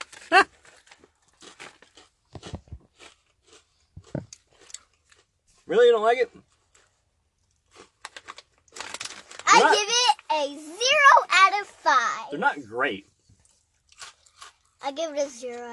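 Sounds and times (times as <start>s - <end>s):
crunchy crispy cheese snacks being chewed: 0.0s - 5.6s, 6.4s - 9.7s, 13.4s - 14.8s
speech: 5.7s - 6.5s, 9.6s - 13.1s, 14.8s - 15.7s
short drawn-out vocal exclamation: 9.5s - 9.8s.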